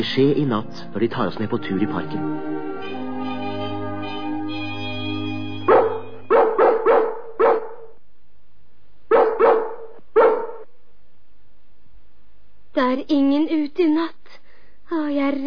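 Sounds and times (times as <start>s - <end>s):
speech: 0.0s - 3.0s, 12.9s - 14.2s, 14.9s - 15.4s
dogs barking in the distance: 5.7s - 8.0s, 9.1s - 10.7s.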